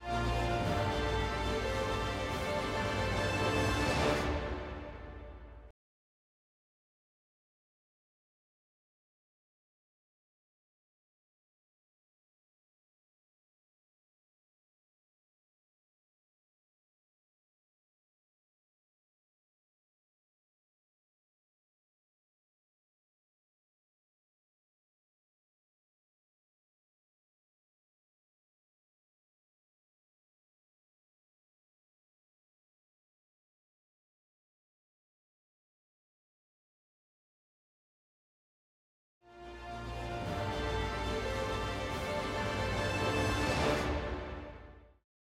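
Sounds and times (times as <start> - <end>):
weight room music: 0.0 - 5.4, 39.6 - 44.6.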